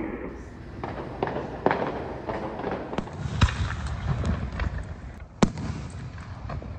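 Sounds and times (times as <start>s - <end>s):
faint voices: 0.0s - 0.8s
fireworks crackling and banging at night: 0.6s - 6.7s.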